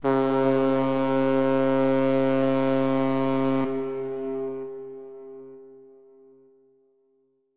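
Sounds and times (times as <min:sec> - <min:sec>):
big ship whistle: 0:00.0 - 0:06.0.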